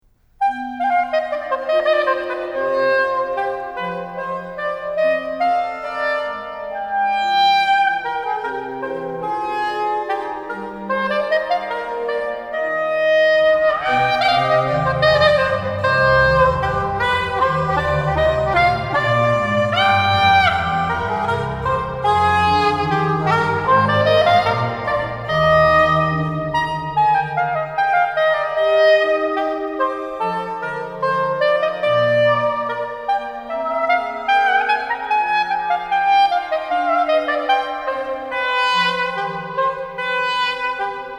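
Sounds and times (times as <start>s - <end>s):
oboe playing a bourree: 0.4s - 41.1s.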